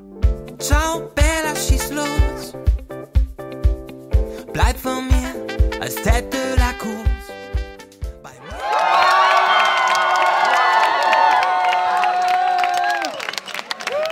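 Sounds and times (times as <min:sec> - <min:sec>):
speech: 0:00.6 - 0:02.8, 0:04.6 - 0:07.0
large crowd cheering and whooping at an election night party: 0:08.4 - 0:14.1
scattered clapping at an election night party: 0:08.6 - 0:14.1.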